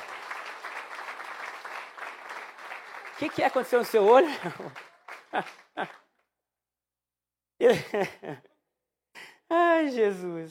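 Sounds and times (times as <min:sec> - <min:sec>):
audience of many hands clapping at once: 0:00.0 - 0:06.1
speech: 0:03.2 - 0:06.0, 0:07.6 - 0:08.5, 0:09.5 - 0:10.4
laughter: 0:04.0 - 0:06.1, 0:07.6 - 0:08.6.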